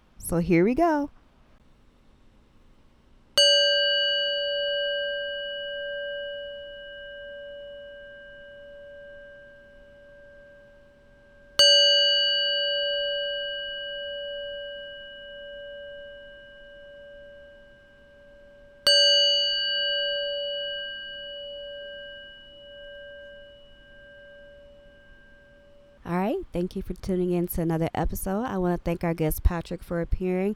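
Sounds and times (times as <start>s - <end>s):
speech: 0.3s - 1.2s, 26.6s - 30.5s
resonant metal sound ball struck and ringing: 3.4s - 26.4s.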